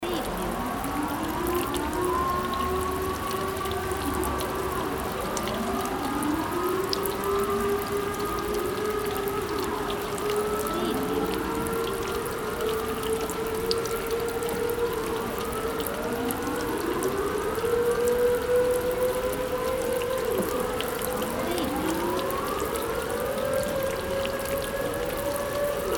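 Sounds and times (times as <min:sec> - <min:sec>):
rain: 0:00.0 - 0:25.9
siren: 0:00.0 - 0:25.9.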